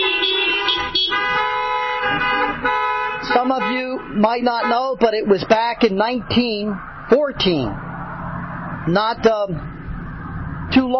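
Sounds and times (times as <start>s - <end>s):
several car horns honking: 0.0s - 7.4s
speech: 3.4s - 7.8s, 8.8s - 9.7s, 10.7s - 10.9s.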